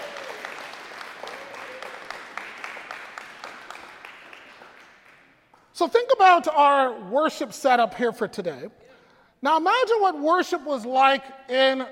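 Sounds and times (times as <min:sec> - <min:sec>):
audience applause: 0:00.0 - 0:05.3
speech: 0:05.8 - 0:11.9.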